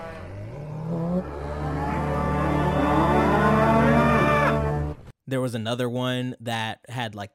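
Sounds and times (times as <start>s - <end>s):
synthetic cow moo from a little robot: 0.0s - 4.8s
speech: 5.3s - 7.3s.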